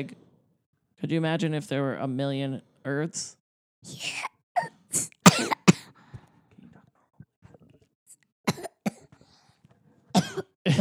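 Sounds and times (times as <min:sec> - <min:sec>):
speech: 0:00.0 - 0:00.2, 0:01.0 - 0:05.1
person coughing: 0:05.3 - 0:05.8.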